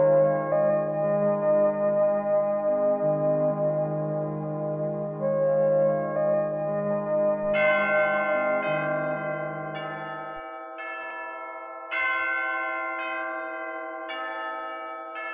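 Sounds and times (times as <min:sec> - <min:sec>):
peal of church bells ringing: 0:00.0 - 0:15.3.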